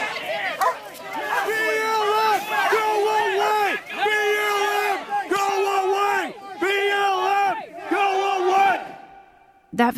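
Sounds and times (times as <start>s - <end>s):
crowd of protesters murmuring and shouting: 0.0s - 9.4s
man yelling after being tased: 1.2s - 8.9s.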